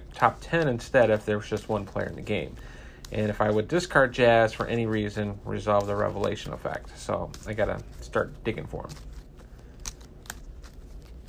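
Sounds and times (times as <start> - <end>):
deck of game cards shuffled during a tabletop card game: 0.0 - 11.2
low hum: 0.0 - 11.2
speech: 0.2 - 9.1.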